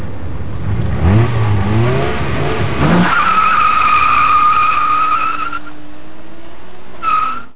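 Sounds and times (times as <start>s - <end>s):
tire spinning: 0.0s - 7.5s.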